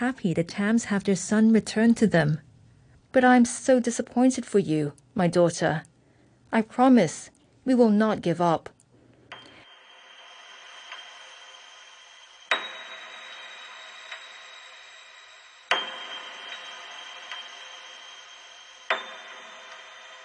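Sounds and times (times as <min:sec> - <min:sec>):
speech: 0:00.0 - 0:02.5, 0:03.1 - 0:05.9, 0:06.5 - 0:08.8
slow clock ticking: 0:08.7 - 0:20.2.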